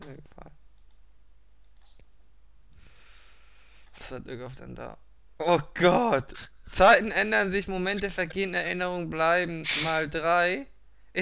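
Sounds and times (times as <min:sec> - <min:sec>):
soft hiss of noise: 0:00.0 - 0:11.2
computer mouse clicks: 0:00.6 - 0:01.0, 0:01.6 - 0:02.1
speech: 0:04.1 - 0:11.2.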